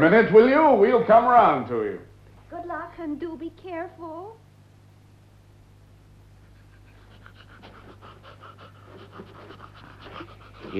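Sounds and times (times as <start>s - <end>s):
speech: 0.0s - 4.4s
low constant hum: 0.0s - 10.7s
old dog panting: 6.4s - 10.7s.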